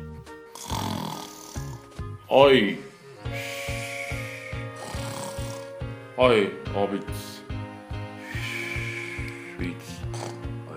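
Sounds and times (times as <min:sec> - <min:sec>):
voice imitating a puppet character snoring: 0:00.5 - 0:01.9, 0:02.8 - 0:05.8, 0:08.2 - 0:10.7
speech: 0:02.3 - 0:02.9, 0:06.2 - 0:07.3
steady tone: 0:02.9 - 0:09.7.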